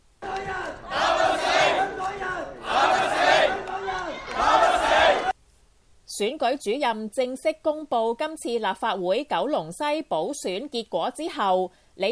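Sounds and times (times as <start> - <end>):
crowd of supporters chanting an encouraging slogan in unison: 0.2 - 5.4
speech: 6.2 - 12.1.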